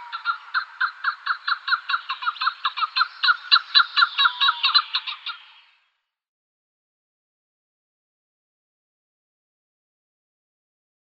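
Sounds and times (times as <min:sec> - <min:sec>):
Chukar partridge Alectoris chukar giving raspy chuck notes: 0:00.0 - 0:05.6.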